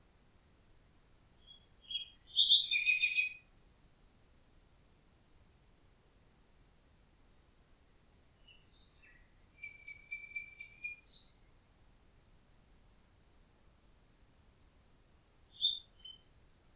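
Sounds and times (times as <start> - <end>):
common nightingale song: 1.3 - 3.6, 8.3 - 11.7, 15.4 - 16.7.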